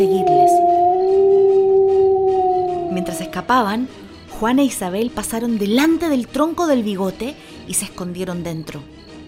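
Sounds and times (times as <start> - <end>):
speech: 0.0 - 0.3, 3.4 - 9.0
wolf howling: 0.0 - 4.1.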